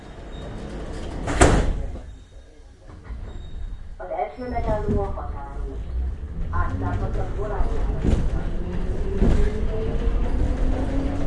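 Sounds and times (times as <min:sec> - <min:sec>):
train sliding doors rolling shut with a firm thud: 0:00.0 - 0:11.2
low rumbling hum of a train carriage: 0:03.4 - 0:11.2
speech: 0:04.4 - 0:05.8, 0:06.7 - 0:08.5.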